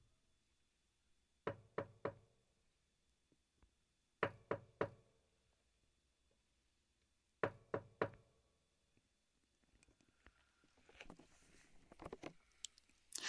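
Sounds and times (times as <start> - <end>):
knocking on a door: 1.5 - 2.3, 4.2 - 5.0, 7.4 - 8.2
rustling and shuffling movement: 9.6 - 13.1.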